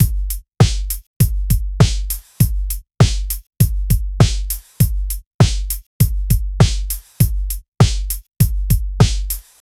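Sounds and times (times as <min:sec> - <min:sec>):
drum and bass beat: 0:00.0 - 0:09.6.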